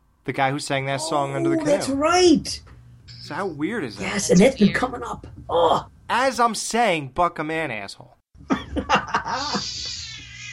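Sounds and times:
speech: 0.2s - 10.0s
fighting cats yowling: 9.3s - 10.5s.

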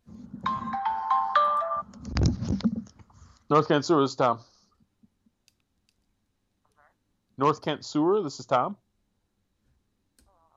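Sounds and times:
phone ringtone electronic melody: 0.4s - 1.9s
clattering handling noise: 1.9s - 3.2s
speech: 3.5s - 4.5s, 7.4s - 8.8s.

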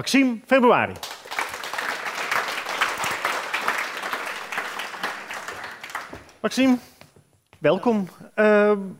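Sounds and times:
speech: 0.0s - 1.1s, 6.4s - 6.9s, 7.6s - 8.9s
audience applause: 1.0s - 6.4s.

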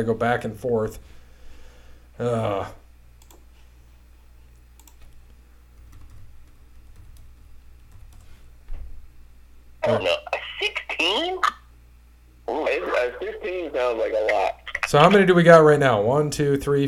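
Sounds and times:
speech: 0.0s - 1.2s, 2.2s - 2.8s, 9.8s - 10.4s, 11.0s - 11.6s, 12.5s - 16.8s
low noise: 0.0s - 16.8s
typing on a computer keyboard: 4.8s - 5.2s, 5.8s - 8.3s.

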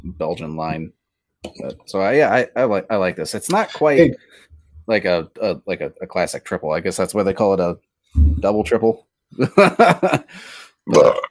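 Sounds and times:
speech: 0.2s - 11.2s
laughter: 2.1s - 4.2s, 9.4s - 10.6s
breathy exhale: 10.3s - 10.8s
person burping: 10.8s - 11.2s.

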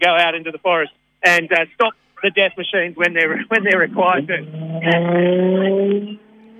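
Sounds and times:
speech: 0.0s - 6.3s
laughter: 2.2s - 5.0s
car speeding past with tyres squealing: 3.7s - 6.5s.

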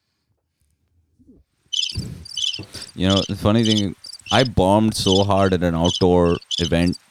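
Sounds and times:
crickets chirping: 1.8s - 7.0s
speech: 3.0s - 7.0s.

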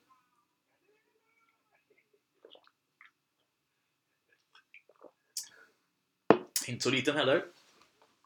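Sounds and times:
sipping Christmas soda julmust: 1.9s - 3.2s, 4.6s - 5.6s
wet mouth clicks and swallows: 1.9s - 3.5s, 4.4s - 5.6s
speech: 6.7s - 7.6s.

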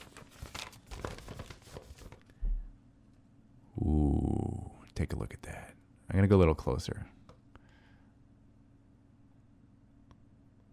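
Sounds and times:
paper rustling, crinkling and tearing: 0.0s - 2.3s
speech: 5.0s - 7.2s.

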